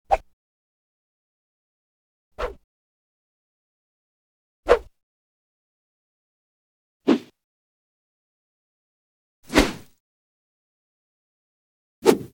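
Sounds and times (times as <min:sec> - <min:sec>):
small swish: 0:07.1 - 0:07.3, 0:09.5 - 0:10.0, 0:12.0 - 0:12.3.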